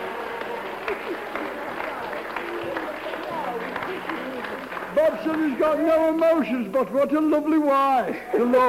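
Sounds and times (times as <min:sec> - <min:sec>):
crowd voices and cheers: 0:00.0 - 0:06.6
audience clapping: 0:00.0 - 0:07.0
speech: 0:05.1 - 0:08.6.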